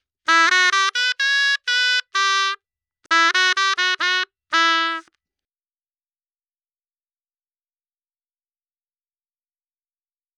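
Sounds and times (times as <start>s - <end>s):
dry shehnai melody in E minor in three-four time at 128 BPM: 0.3s - 5.1s.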